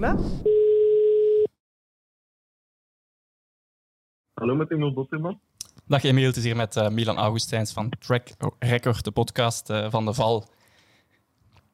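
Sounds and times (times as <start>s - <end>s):
speech: 0.0s - 0.6s, 4.4s - 10.6s
telephone ringback tone while a call is placed: 0.5s - 1.5s.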